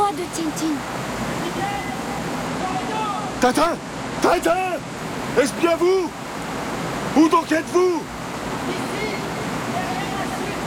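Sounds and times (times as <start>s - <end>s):
waterfall roaring: 0.0s - 10.6s
speech: 0.2s - 1.7s, 3.4s - 6.2s, 7.1s - 8.8s.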